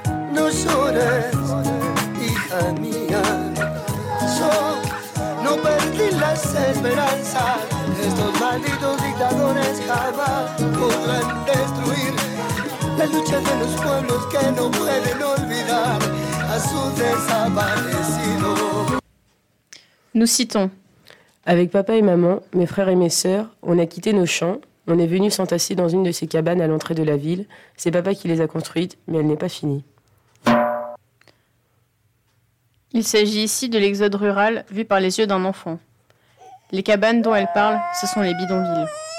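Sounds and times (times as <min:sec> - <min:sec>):
chorus of a French rap song: 0:00.2 - 0:19.0
speech: 0:06.3 - 0:19.0, 0:20.2 - 0:20.8, 0:21.4 - 0:30.6, 0:32.9 - 0:35.9, 0:36.7 - 0:39.1.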